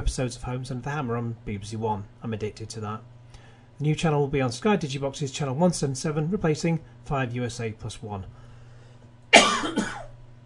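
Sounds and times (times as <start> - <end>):
speech: 0.0 - 3.1, 3.8 - 8.4
person coughing hoarsely: 9.3 - 10.2.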